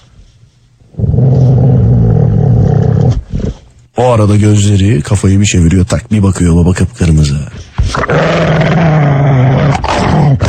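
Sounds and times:
dog growling and roaring in a rumbling snarl: 0.9s - 3.7s, 7.8s - 10.4s
speech: 4.0s - 8.8s.

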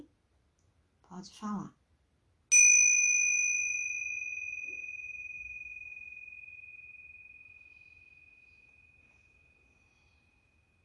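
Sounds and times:
speech: 1.2s - 1.8s
bell struck with a clear high tone: 2.5s - 10.8s.

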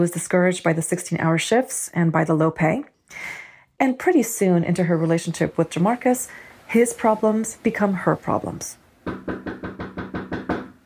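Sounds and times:
speech: 0.0s - 9.7s
police knocking firmly on an apartment door: 9.0s - 10.8s.

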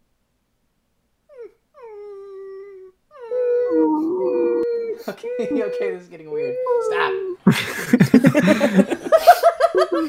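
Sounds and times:
person imitating a whining dog: 1.3s - 7.4s
laughter: 5.0s - 6.0s, 7.4s - 10.0s
speech: 5.0s - 8.9s.

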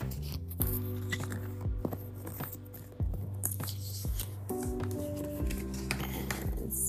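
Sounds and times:
deck of oracle cards being shuffled for a card reading: 0.0s - 6.8s.

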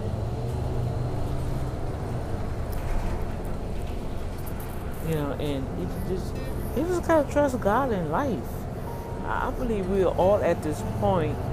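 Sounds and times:
bus engine drone heard from inside a moving bus: 0.0s - 11.5s
road noise: 0.0s - 11.5s
faint rattles and clicks: 1.2s - 5.1s
speech: 5.1s - 8.6s, 9.2s - 11.5s.

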